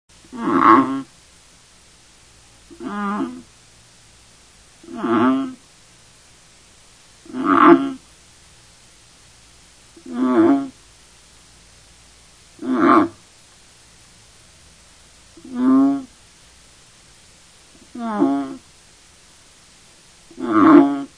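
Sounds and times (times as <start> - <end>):
Banded bullfrog Kaloula pulchra calls: 0.3 - 1.1, 2.7 - 3.5, 4.8 - 5.6, 7.2 - 8.1, 10.0 - 10.8, 12.6 - 13.3, 15.4 - 16.2, 17.8 - 18.7, 20.3 - 21.1.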